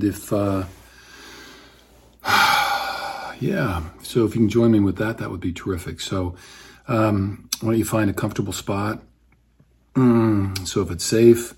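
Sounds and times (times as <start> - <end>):
speech: 0.0 - 0.8, 3.4 - 9.1, 10.0 - 11.5
loud deliberate airy inhale: 0.7 - 3.4, 6.4 - 6.9.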